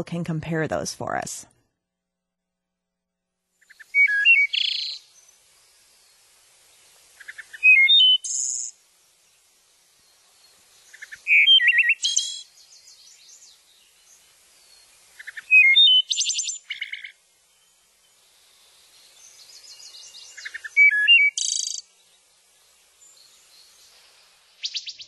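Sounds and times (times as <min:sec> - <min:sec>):
speech: 0:00.0 - 0:01.6
hermit thrush singing: 0:03.6 - 0:25.0
wood thrush singing: 0:03.7 - 0:05.3, 0:07.2 - 0:08.7, 0:10.0 - 0:25.0.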